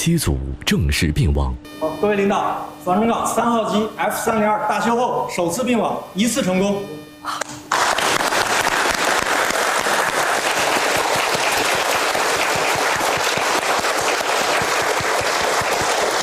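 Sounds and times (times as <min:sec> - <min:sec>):
speech: 0:00.0 - 0:07.6
applause from a group of people in a control room: 0:07.7 - 0:16.2.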